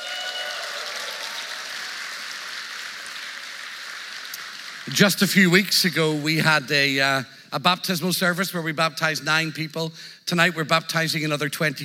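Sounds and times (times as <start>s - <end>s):
large crowd applauding: 0.0s - 6.1s
speech: 4.9s - 11.8s.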